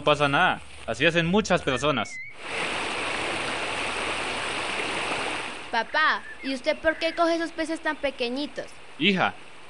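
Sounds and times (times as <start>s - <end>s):
speech: 0.0s - 2.9s, 5.7s - 9.6s
stream water rushing: 2.4s - 5.9s.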